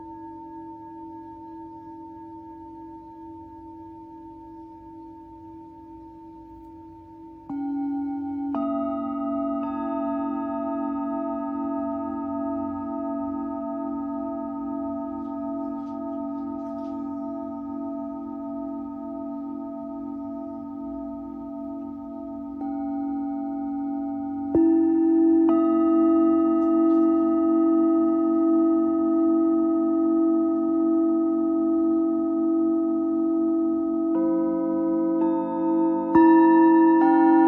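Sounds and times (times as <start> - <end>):
Tibetan singing bowl ringing: 0.0 - 37.4.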